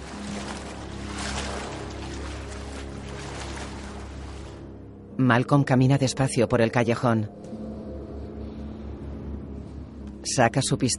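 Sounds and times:
footsteps wading through ankle-deep water in a sewer tunnel: 0:00.0 - 0:04.8
speech: 0:05.2 - 0:07.5, 0:10.3 - 0:10.9.

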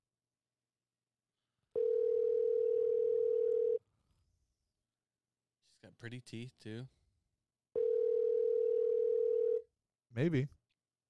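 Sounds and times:
electronic ringback tone from a phone call: 0:01.8 - 0:03.8, 0:07.8 - 0:09.6
speech: 0:05.8 - 0:07.0, 0:10.1 - 0:10.6.

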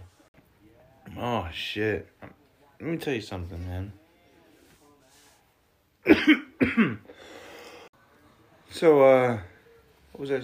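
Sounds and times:
speech: 0:01.2 - 0:02.2, 0:02.8 - 0:04.0, 0:06.0 - 0:07.4, 0:08.7 - 0:09.5, 0:10.2 - 0:10.4
harsh coughs: 0:06.0 - 0:07.1.

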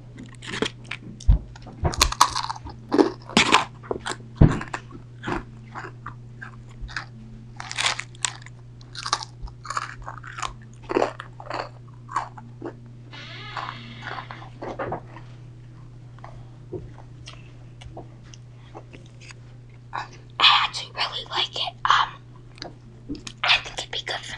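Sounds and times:
steady low hum: 0:00.0 - 0:24.3
biting and chewing chewy, crunchy food: 0:00.2 - 0:12.8, 0:16.2 - 0:20.4.

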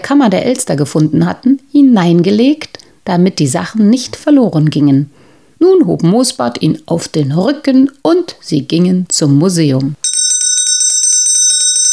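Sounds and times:
speech: 0:00.1 - 0:10.0
doorbell ringing with bright metallic trill: 0:10.0 - 0:11.9.

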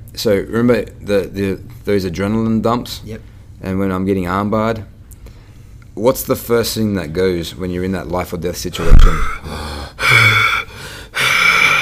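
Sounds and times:
speech: 0:00.2 - 0:04.9, 0:06.0 - 0:09.7
loud exaggerated heavy rasping breathing: 0:08.8 - 0:11.8.

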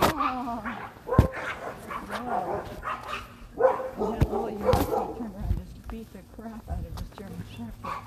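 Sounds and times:
Yorkshire terrier yapping: 0:00.0 - 0:05.2.

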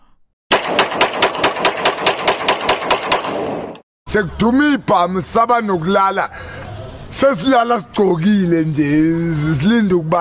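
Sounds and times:
rapid burst of automatic gunshots: 0:00.5 - 0:03.8
speech: 0:04.1 - 0:10.1.

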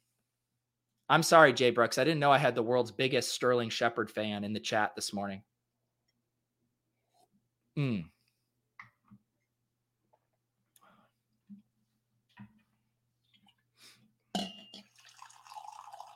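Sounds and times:
speech: 0:01.1 - 0:05.5, 0:07.8 - 0:08.1
brief vocal sound: 0:07.8 - 0:08.1
liquid poured into a glass: 0:14.7 - 0:16.1.

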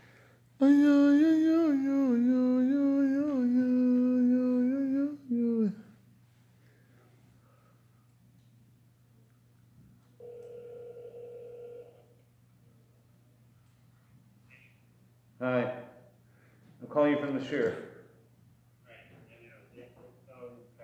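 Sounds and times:
low steady hum: 0:00.0 - 0:20.8
ringback tone on a phone line: 0:10.2 - 0:12.1.

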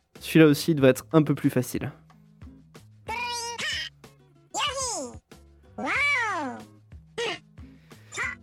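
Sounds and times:
speech: 0:00.2 - 0:02.0
cartoonish green dinosaur video game character's squeaky chirps and yelps: 0:03.1 - 0:03.9, 0:04.5 - 0:05.2, 0:05.8 - 0:07.4, 0:08.1 - 0:08.4.

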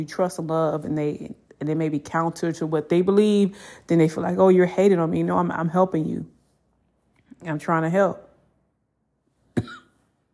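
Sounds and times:
speech: 0:00.0 - 0:06.4, 0:07.4 - 0:08.2
sharp raspy cough: 0:09.5 - 0:10.0.

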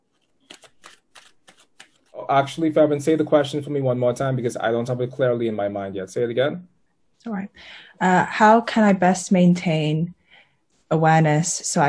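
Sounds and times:
tarot cards being shuffled: 0:00.0 - 0:02.2
speech: 0:02.2 - 0:10.2, 0:10.9 - 0:11.8.

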